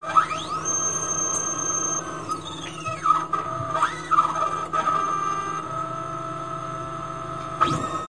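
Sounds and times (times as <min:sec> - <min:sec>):
strange resonant atmospheric squeal: 0:00.0 - 0:06.1.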